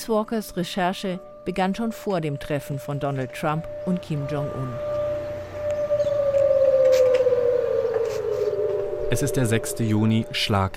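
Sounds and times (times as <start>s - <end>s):
speech: 0.0s - 5.0s, 9.1s - 10.7s
civil defense siren wailing across South Korea on a national memorial day: 0.5s - 10.7s.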